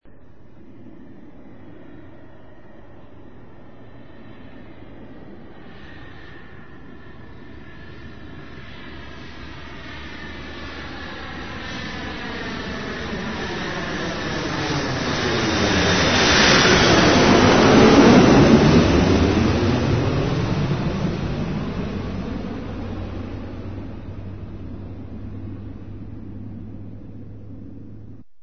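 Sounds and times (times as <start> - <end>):
airplane: 0.0 - 28.4.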